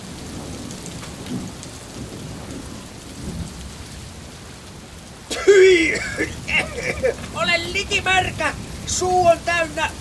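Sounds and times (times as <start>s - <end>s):
deep thunder rumbling low: 0.0s - 9.9s
steady heavy rain hissing: 0.0s - 9.9s
laughter: 5.3s - 8.4s
speech: 5.8s - 9.9s.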